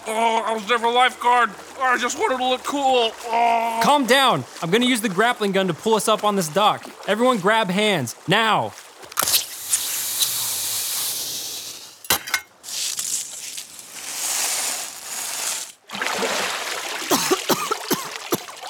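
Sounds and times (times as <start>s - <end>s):
water dripping: 0.0s - 10.3s, 15.9s - 18.6s
lake water splashing as people are pulled out onto a dock: 0.0s - 18.6s
speech: 0.1s - 8.8s.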